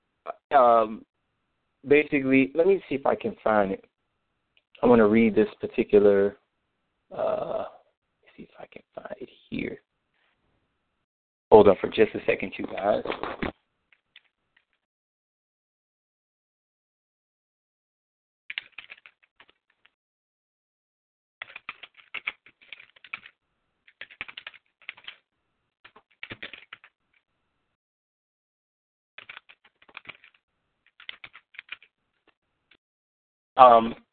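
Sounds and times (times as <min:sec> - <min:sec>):
speech: 0:00.5 - 0:01.1, 0:01.8 - 0:03.9, 0:04.8 - 0:06.4, 0:07.1 - 0:07.7, 0:08.6 - 0:09.8, 0:11.5 - 0:13.5, 0:33.6 - 0:34.0
typing on a computer keyboard: 0:18.5 - 0:19.8, 0:21.4 - 0:25.2, 0:25.9 - 0:27.0, 0:29.2 - 0:31.9.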